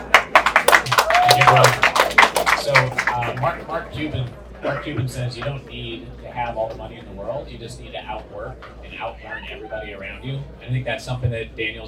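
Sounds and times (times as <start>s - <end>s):
small crowd clapping to welcome a speaker: 0.0s - 4.3s
person whooping: 0.9s - 1.7s
speech: 1.4s - 1.8s, 2.7s - 11.8s.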